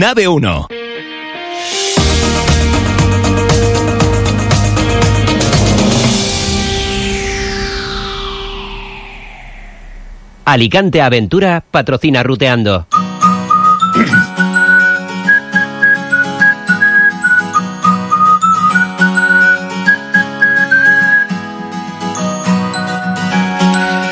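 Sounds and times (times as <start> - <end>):
speech: 0.0 - 0.8, 10.5 - 13.1, 14.0 - 14.3
steady musical backing: 0.0 - 9.6, 12.9 - 24.1
bright whistled jingle melody: 12.9 - 24.1.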